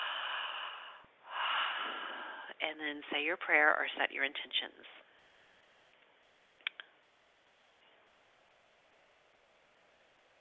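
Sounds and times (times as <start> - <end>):
person taking a breath: 0.0 - 2.6
speech: 2.6 - 5.1.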